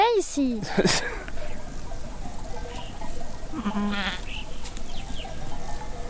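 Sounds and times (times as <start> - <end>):
speech: 0.2 - 1.2, 3.6 - 4.3
other animal sounds in a mountain pasture: 1.2 - 6.0
sheep bleating in a mountain pasture: 3.5 - 4.4.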